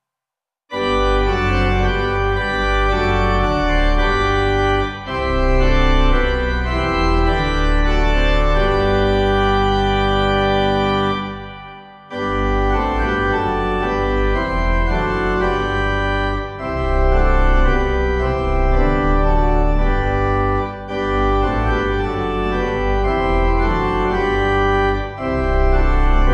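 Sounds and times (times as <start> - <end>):
organ playing a hymn: 0.7 - 26.3.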